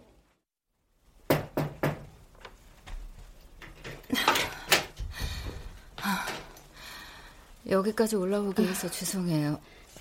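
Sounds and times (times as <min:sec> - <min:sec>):
sharp knocks on a door: 0:01.3 - 0:02.1
speech: 0:04.1 - 0:04.4, 0:07.7 - 0:09.8.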